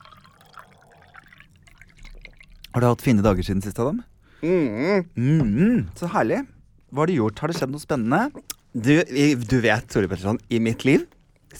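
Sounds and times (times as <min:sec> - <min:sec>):
water pouring into a small container: 0:00.0 - 0:03.2
speech: 0:02.8 - 0:11.5.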